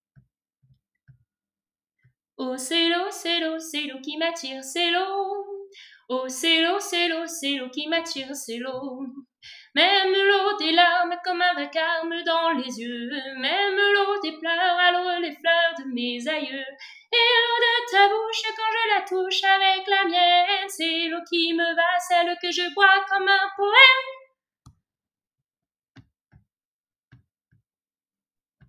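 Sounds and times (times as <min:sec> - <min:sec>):
voice: 0:02.4 - 0:09.2, 0:09.8 - 0:24.2.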